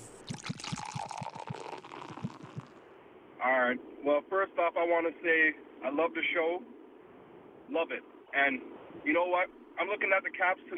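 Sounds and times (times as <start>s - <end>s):
drink being poured with glugs and splashes: 0.0s - 2.7s
speech: 3.4s - 6.7s, 7.7s - 10.7s.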